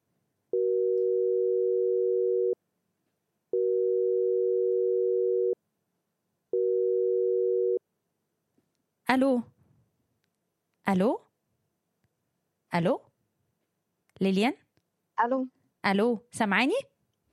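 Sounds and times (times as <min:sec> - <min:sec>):
telephone busy signal while redialing a call: 0:00.6 - 0:02.6, 0:03.6 - 0:05.6, 0:06.6 - 0:07.8
speech: 0:09.1 - 0:09.5, 0:10.9 - 0:11.2, 0:12.7 - 0:13.1, 0:14.2 - 0:14.6, 0:15.2 - 0:16.9.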